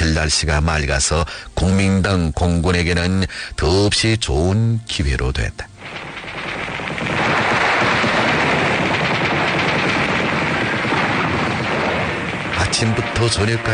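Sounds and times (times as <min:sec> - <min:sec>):
speech: 0:00.2 - 0:06.1, 0:12.7 - 0:13.7
machine gun fire in rapid dense bursts: 0:05.8 - 0:13.7.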